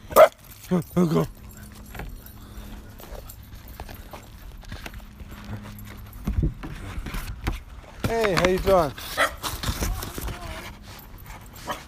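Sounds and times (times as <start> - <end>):
puppy barking at a house: 0.1 - 0.4, 9.1 - 9.5
speech: 0.7 - 1.4, 8.5 - 9.2
faint shuffling: 0.8 - 11.8.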